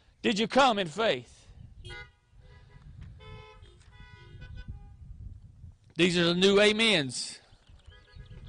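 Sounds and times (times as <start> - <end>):
speech: 0.2 - 2.1, 6.0 - 7.4
several car horns honking together: 1.8 - 5.1.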